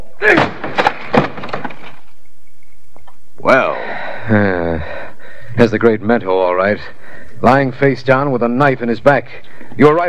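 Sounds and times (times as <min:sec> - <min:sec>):
speech: 0:00.2 - 0:00.6, 0:03.5 - 0:04.6, 0:05.6 - 0:10.0
heavy wooden door bursting open under a shove: 0:00.2 - 0:02.0.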